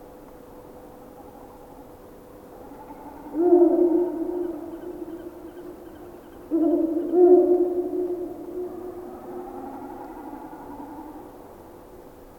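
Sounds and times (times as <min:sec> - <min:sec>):
Ural owl hooting: 0:02.5 - 0:11.6.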